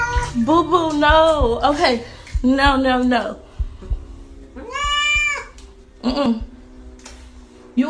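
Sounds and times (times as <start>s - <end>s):
cat meowing: 0.0s - 0.4s, 4.6s - 5.6s
speech: 0.4s - 3.4s, 6.0s - 6.5s.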